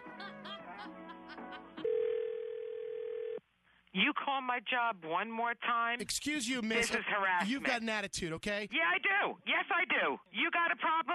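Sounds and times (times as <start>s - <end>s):
laughter: 0.0s - 2.0s
electronic telephone on-hold tone: 1.8s - 3.4s
speech: 4.0s - 11.1s.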